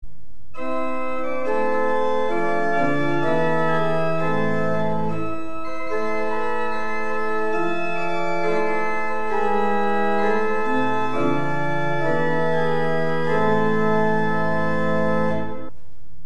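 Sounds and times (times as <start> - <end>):
pipe organ with Prestant 8', Octaaf 4' and Octaaf 2' stops: 0.6 - 15.7.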